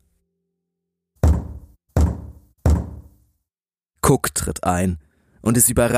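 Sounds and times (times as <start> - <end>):
firm knocks on a wooden door: 1.2 - 3.1
speech: 4.1 - 5.9.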